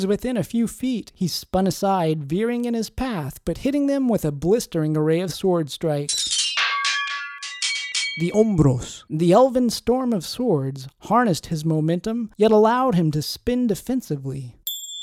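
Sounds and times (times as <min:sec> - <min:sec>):
speech: 0:00.0 - 0:06.3, 0:08.2 - 0:14.6
school bell ringing: 0:06.2 - 0:08.5
brief high ding: 0:06.3 - 0:08.4, 0:14.7 - 0:15.0
person narrating: 0:08.2 - 0:09.4.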